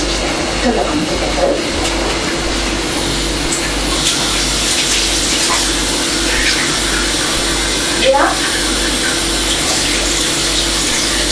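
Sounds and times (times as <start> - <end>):
running tap water while someone washes their hands: 0.0 - 11.3
speech: 0.6 - 1.9.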